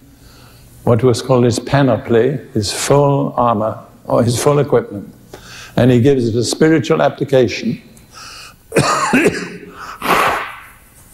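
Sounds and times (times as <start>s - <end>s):
speech: 0.8s - 5.2s, 5.8s - 7.9s
person blowing nose: 9.7s - 10.8s.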